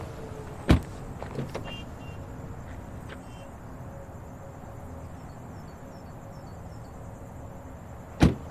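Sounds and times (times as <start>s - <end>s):
steady outdoor hum: 0.0s - 8.4s
car doors slamming shut: 0.7s - 1.9s, 8.2s - 8.4s.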